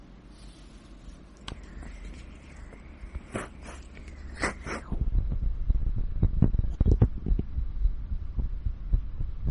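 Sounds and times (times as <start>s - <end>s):
soft low hum: 0.0s - 9.4s
heartbeat in paired beats: 4.8s - 9.4s.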